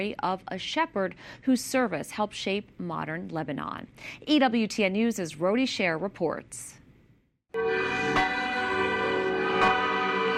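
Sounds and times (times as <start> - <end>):
speech: 0.0 - 6.8
church bells ringing in Lebanon at a beatification ceremony: 7.6 - 10.3.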